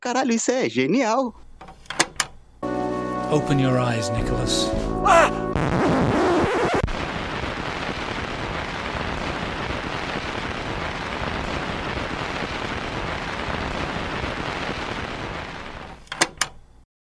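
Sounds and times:
speech: 0:00.0 - 0:01.4, 0:03.3 - 0:05.5
vinyl crackle and hiss from a record in a locked groove: 0:05.6 - 0:16.6
sharp clicks: 0:16.0 - 0:16.6.

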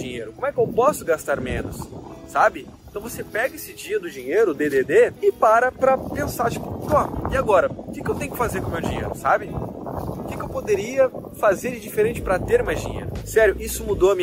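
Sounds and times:
low blustery wind rumble buffeting the microphone: 0:00.0 - 0:14.2
speech: 0:00.0 - 0:14.2.

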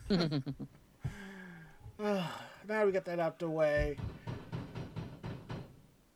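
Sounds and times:
speech: 0:00.1 - 0:00.8, 0:02.0 - 0:04.1
sharp knocks on a door: 0:03.8 - 0:05.8.

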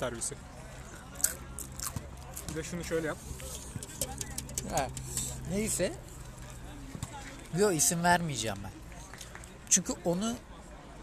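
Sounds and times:
speech: 0:00.0 - 0:00.6, 0:02.5 - 0:06.1, 0:07.5 - 0:08.8, 0:09.8 - 0:10.5
person chewing crisp food: 0:01.2 - 0:02.3.

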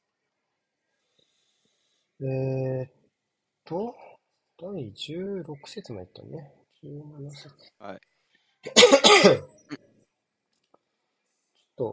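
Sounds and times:
speech: 0:02.2 - 0:03.0, 0:03.7 - 0:04.0, 0:04.6 - 0:09.8
raspy throat-clearing cough: 0:08.7 - 0:09.5.

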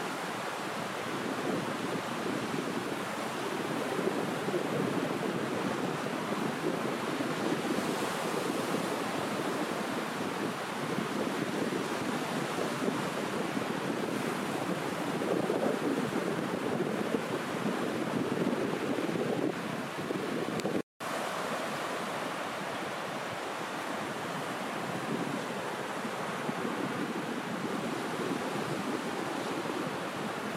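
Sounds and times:
ocean waves washing against a beach: 0:00.0 - 0:30.5
wind blowing across the microphone: 0:00.0 - 0:30.5.

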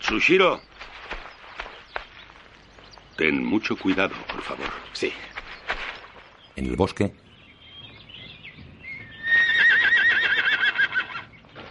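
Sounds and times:
speech: 0:00.1 - 0:00.7, 0:03.2 - 0:05.4, 0:06.6 - 0:07.2
horse neighing in a forest: 0:09.1 - 0:11.3.

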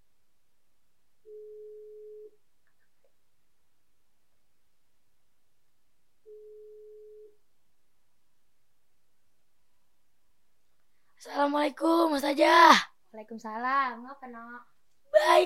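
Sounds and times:
faint hiss: 0:00.0 - 0:15.4
telephone ringback tone: 0:01.3 - 0:02.4, 0:06.3 - 0:07.4
speech: 0:11.2 - 0:15.4.

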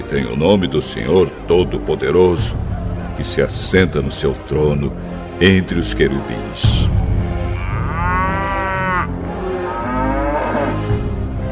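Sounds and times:
speech: 0:00.1 - 0:07.1
oxen drawing a new cart lowing: 0:07.4 - 0:11.0.

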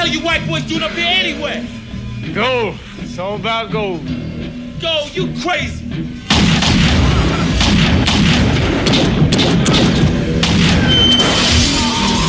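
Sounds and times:
speech: 0:00.1 - 0:04.2, 0:04.8 - 0:06.3
heavy gunfire as two men shoot each other: 0:06.3 - 0:11.6.

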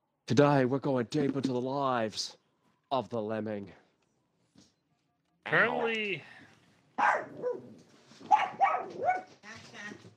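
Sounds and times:
speech: 0:00.3 - 0:03.8, 0:05.5 - 0:06.4, 0:07.0 - 0:07.7
dog barking and yowling: 0:07.0 - 0:09.3.

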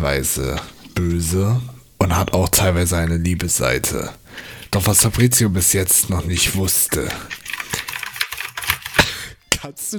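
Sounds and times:
speech: 0:00.0 - 0:07.4, 0:09.6 - 0:09.9
computer keyboard keys clattering while being cleaned: 0:07.3 - 0:09.0.

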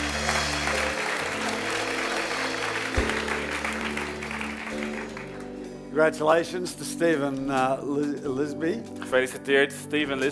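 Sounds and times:
audience applause welcoming guests at an event celebrating a new building: 0:00.0 - 0:05.6
speech: 0:06.0 - 0:10.3.

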